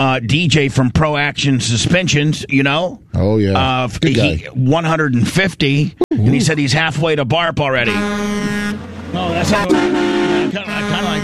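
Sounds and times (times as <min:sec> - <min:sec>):
speech: 0:00.0 - 0:11.2
truck horn honking: 0:07.8 - 0:11.2.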